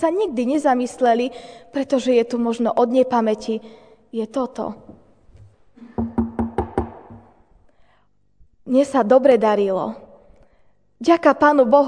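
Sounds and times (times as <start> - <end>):
speech: 0.0 - 5.0, 8.7 - 10.0, 11.0 - 11.8
hollow knocks on wood: 5.8 - 7.4.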